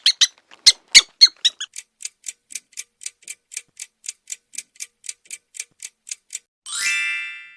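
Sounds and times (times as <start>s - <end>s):
mouse squeaking: 0.0s - 1.8s.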